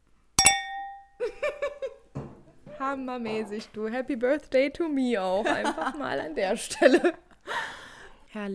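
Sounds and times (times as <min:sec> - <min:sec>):
glasses clinking in a birthday toast: 0:00.4 - 0:01.3
speech: 0:02.8 - 0:07.2, 0:08.4 - 0:08.5.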